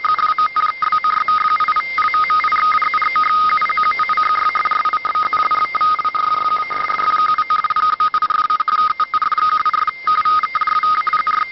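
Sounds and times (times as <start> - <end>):
radioteletype signal: 0.0 - 11.5.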